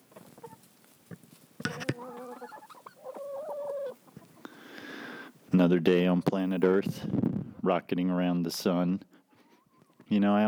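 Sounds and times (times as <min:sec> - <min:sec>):
chickens clucking and squawking: 0:00.0 - 0:05.7, 0:09.3 - 0:10.1
speech: 0:05.6 - 0:09.1, 0:10.1 - 0:10.4.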